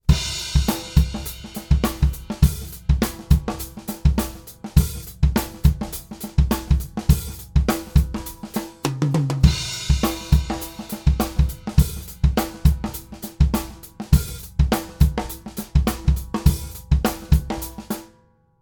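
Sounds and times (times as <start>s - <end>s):
funk snare drum: 0.0s - 18.1s.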